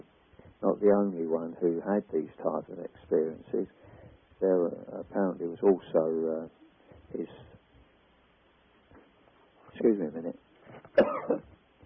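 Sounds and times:
speech: 0.6 - 7.5, 9.8 - 10.4, 11.0 - 11.5
person with a hoarse throat clearing their throat: 10.9 - 11.5
person with a hoarse throat coughing: 10.9 - 11.5.

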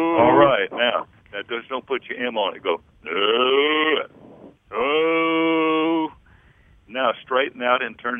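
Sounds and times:
person imitating a cow mooing as a vocal exercise: 0.0 - 0.7, 3.1 - 4.1, 4.7 - 6.2
speech: 0.0 - 5.1, 6.9 - 8.1.

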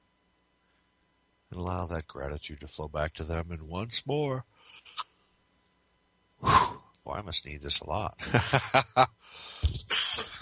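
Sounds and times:
speech: 1.6 - 5.1, 6.4 - 10.3
person yawning: 6.4 - 6.9
laughter: 8.2 - 9.1.

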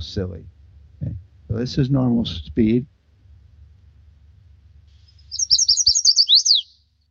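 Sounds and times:
faint low rumble: 0.0 - 5.5
speech: 0.1 - 0.6, 1.5 - 2.9
chestnut-sided warbler singing: 5.0 - 7.0.

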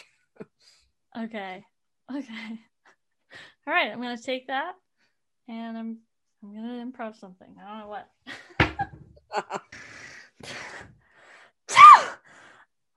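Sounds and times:
speech: 1.2 - 2.7, 3.3 - 4.8, 5.5 - 8.4, 9.3 - 10.7
sneezing into a face mask: 11.7 - 12.2.

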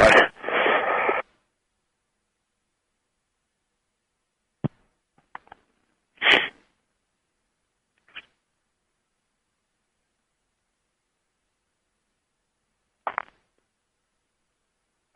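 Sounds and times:
person sniffing: 0.0 - 1.2, 6.2 - 6.7.

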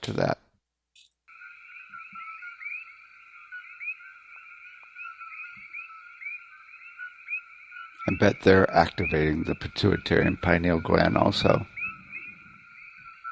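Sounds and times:
speech: 0.0 - 0.4, 8.1 - 11.7
coqui frogs calling in chorus: 1.3 - 13.2.

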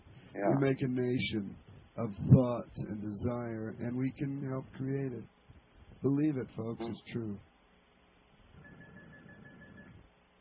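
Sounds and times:
low rumbling background: 0.0 - 7.6
speech: 0.4 - 5.4, 6.0 - 7.5
phone ringing with a warbling, trilling tone: 8.6 - 10.0.

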